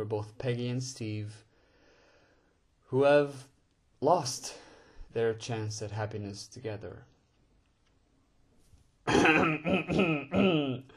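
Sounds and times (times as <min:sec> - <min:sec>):
speech: 0:00.0 - 0:01.5, 0:02.9 - 0:04.6, 0:05.2 - 0:07.1, 0:09.0 - 0:10.9
throat clearing: 0:09.1 - 0:10.9.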